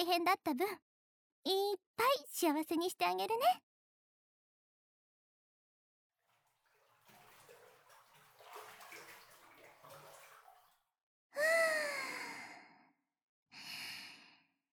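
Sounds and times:
speech: 0:00.0 - 0:03.6
hot bath water splashing and sloshing in a bathtub: 0:06.2 - 0:11.0
long breathy voiced sighs: 0:11.4 - 0:12.6.

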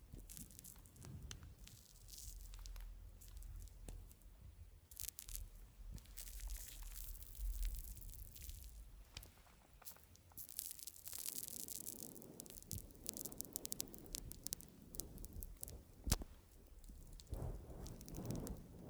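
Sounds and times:
thick foam crackling and squishing at the ear: 0:00.2 - 0:18.8
soft rubbing: 0:05.1 - 0:18.8.

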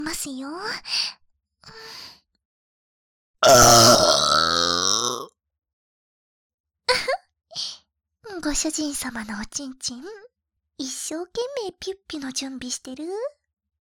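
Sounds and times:
speech: 0:00.0 - 0:01.9, 0:08.4 - 0:13.4
very large drawn-out burp with resonant croaking tone: 0:03.4 - 0:05.4.

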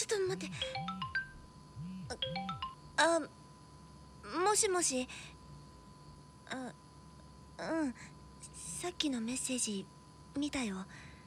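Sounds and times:
speech: 0:00.3 - 0:00.8, 0:03.0 - 0:03.4, 0:04.3 - 0:05.4, 0:06.5 - 0:06.8, 0:07.6 - 0:08.2, 0:08.8 - 0:11.1
phone ringtone for an incoming call: 0:00.3 - 0:01.4, 0:02.1 - 0:02.8.

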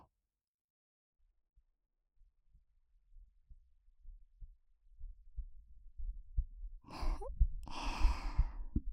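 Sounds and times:
heartbeat: 0:04.0 - 0:08.9.

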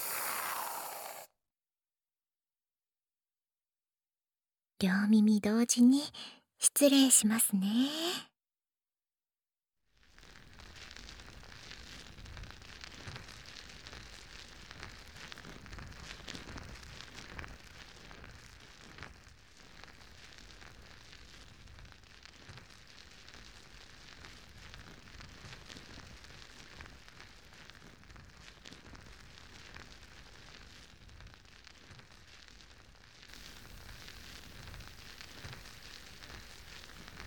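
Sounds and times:
foam fizzing and crackling on ears during ear cleaning: 0:00.0 - 0:01.3, 0:10.0 - 0:37.2
speech: 0:04.8 - 0:08.3.

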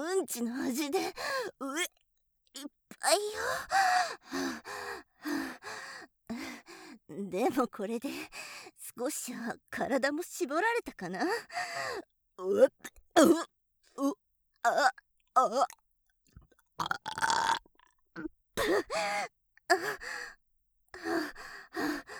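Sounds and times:
speech: 0:00.2 - 0:02.0, 0:02.6 - 0:04.8, 0:07.2 - 0:08.4, 0:09.0 - 0:15.8, 0:18.2 - 0:20.3
loud rough burp: 0:16.8 - 0:17.9.

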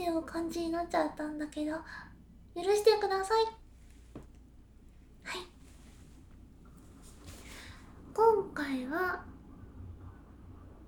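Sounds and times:
speech: 0:00.2 - 0:03.6, 0:05.2 - 0:05.5, 0:08.2 - 0:09.3
train passing by a love hotel in a small town: 0:06.9 - 0:10.8.

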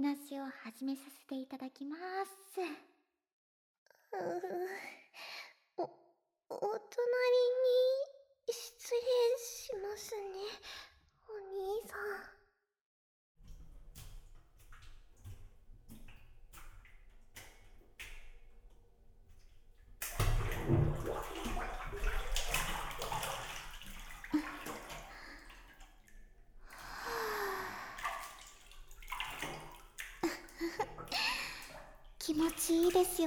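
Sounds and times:
speech: 0:00.0 - 0:02.9, 0:04.1 - 0:12.4, 0:32.8 - 0:33.2
hot bath water splashing and sloshing: 0:13.4 - 0:33.2.

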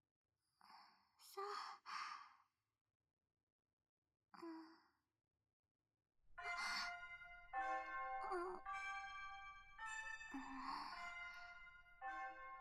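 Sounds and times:
soft breathy sounds: 0:00.6 - 0:02.4, 0:04.4 - 0:05.0, 0:06.4 - 0:07.4, 0:08.2 - 0:12.5
speech: 0:01.3 - 0:02.0
school bell chime: 0:06.4 - 0:12.5.

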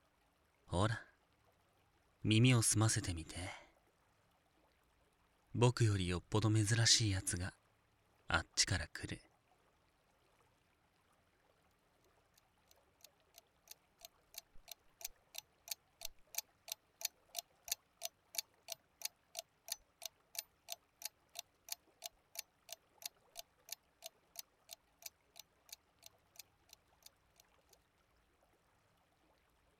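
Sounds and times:
speech: 0:00.8 - 0:01.1, 0:02.2 - 0:03.6, 0:05.6 - 0:07.6, 0:08.3 - 0:09.3
clock ticking: 0:13.4 - 0:27.5.

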